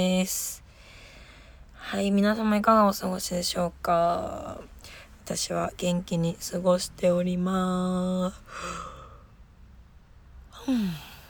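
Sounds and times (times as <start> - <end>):
speech: 0.0 - 0.6, 1.9 - 4.7, 5.3 - 8.9, 10.6 - 11.1
breathy exhale: 0.7 - 1.6, 8.5 - 9.3, 10.6 - 11.2
yawn: 10.5 - 11.2.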